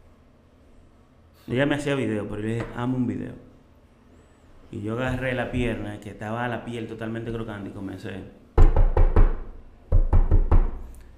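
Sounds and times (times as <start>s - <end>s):
speech: 1.5s - 3.5s, 4.7s - 8.4s
firm knocking like on a door: 8.6s - 10.8s.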